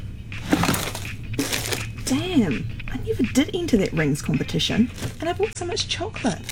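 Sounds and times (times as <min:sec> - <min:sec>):
small objects clattering and scraping in a cluttered junk drawer: 0:00.4 - 0:02.3, 0:03.0 - 0:05.6
speech: 0:02.1 - 0:06.4.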